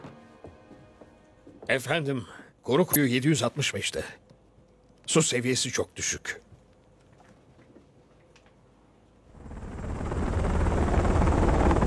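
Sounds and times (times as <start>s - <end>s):
speech: 1.7s - 4.2s, 5.1s - 6.5s
helicopter rotor and engine flying over a nuclear plant: 9.4s - 11.8s.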